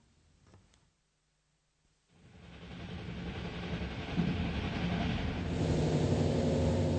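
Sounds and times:
train rumbling on rails: 2.1s - 6.9s.

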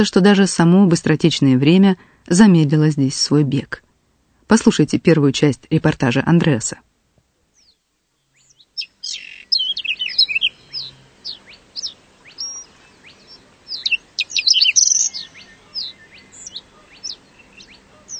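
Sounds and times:
speech: 0.0s - 3.8s, 4.5s - 6.9s
rare birds singing and chirping in nature reserve: 7.5s - 18.1s.

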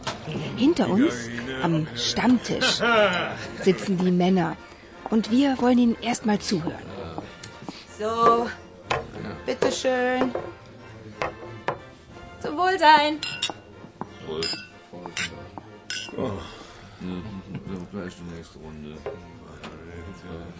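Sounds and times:
murmur of people talking in a pub: 0.0s - 20.5s
speech: 0.6s - 6.9s, 8.0s - 8.6s, 9.5s - 10.6s, 12.6s - 13.5s, 14.3s - 15.3s, 16.2s - 19.5s, 20.1s - 20.5s
laughter: 1.6s - 4.1s, 17.0s - 18.0s
glasses set down on a pub table: 8.2s - 10.6s
glasses clinking in a toast: 13.2s - 13.8s, 14.4s - 16.2s.

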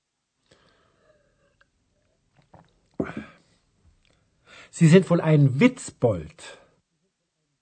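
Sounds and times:
doctor gulping a mouthful of beer: 2.3s - 3.4s
speech: 4.7s - 6.6s.

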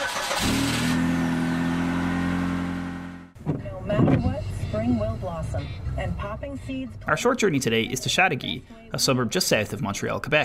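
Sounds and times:
car engine starting and idling: 0.0s - 7.1s
speech: 4.9s - 10.4s.

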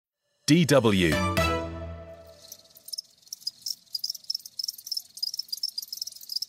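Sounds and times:
speech: 0.5s - 1.4s
many crickets chirping on a farm: 2.3s - 6.4s.

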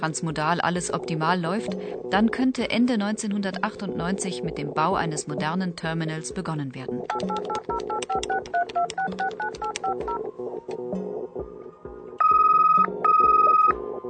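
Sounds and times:
speech: 0.0s - 11.0s
telephone keypad dialing tones: 7.1s - 10.2s, 12.2s - 13.8s.

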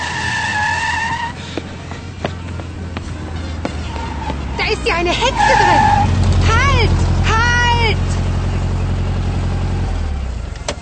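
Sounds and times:
car tires squealing: 0.0s - 1.9s, 3.2s - 7.9s
car engine rumbling as it pulls away: 0.0s - 10.8s
speech: 4.8s - 6.2s, 6.8s - 7.1s.

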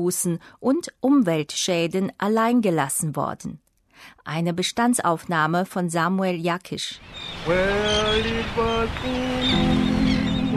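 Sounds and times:
speech: 0.0s - 10.1s
gentle ocean waves on beach: 7.0s - 10.5s.

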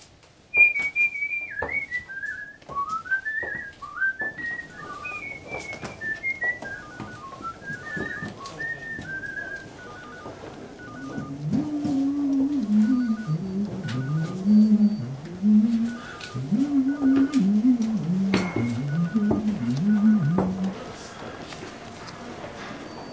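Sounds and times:
man whistling a lively tune: 0.5s - 20.8s
footsteps: 0.6s - 23.1s.

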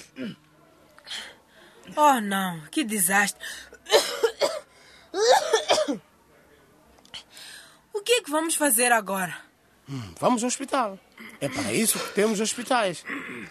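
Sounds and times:
speech: 0.0s - 0.4s, 1.9s - 4.3s, 5.2s - 6.1s, 8.0s - 13.4s
harsh coughing: 3.9s - 6.0s, 11.2s - 13.4s.

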